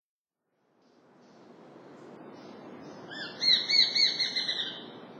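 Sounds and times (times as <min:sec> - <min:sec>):
Japanese sparrowhawk calling in Utsunomiya: 0:02.4 - 0:05.0.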